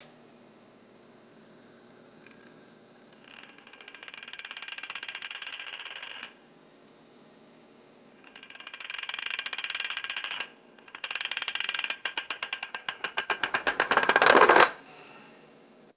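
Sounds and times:
roulette ball spinning and dropping: 0:03.4 - 0:06.3, 0:08.3 - 0:14.8.

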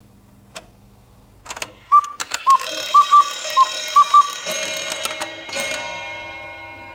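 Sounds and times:
cuckoo clock striking: 0:01.6 - 0:06.9.

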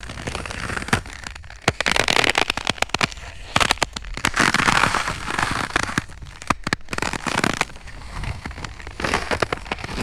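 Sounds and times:
low pitched ice crackling and crunching: 0:00.0 - 0:10.0.

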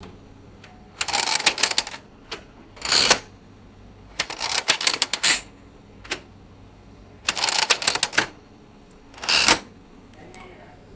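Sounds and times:
mechanical ticket machine setting clicks: 0:00.6 - 0:03.3, 0:04.1 - 0:06.3, 0:07.2 - 0:08.4, 0:09.1 - 0:09.7.

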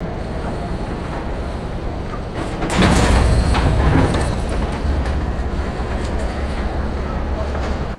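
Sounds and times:
heavy ferry docking crash: 0:00.4 - 0:07.9.

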